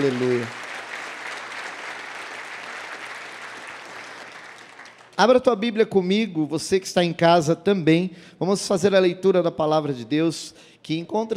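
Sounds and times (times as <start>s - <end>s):
speech: 0.0s - 0.6s, 5.2s - 11.3s
audience applauding: 0.0s - 5.2s.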